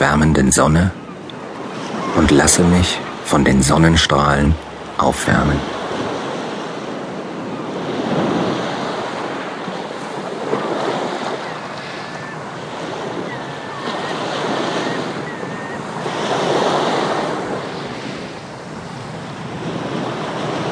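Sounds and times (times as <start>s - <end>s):
speech: 0.0s - 1.0s, 2.1s - 5.8s
ocean waves breaking on a sandy beach: 0.0s - 20.7s
faint high bird call: 13.2s - 15.9s.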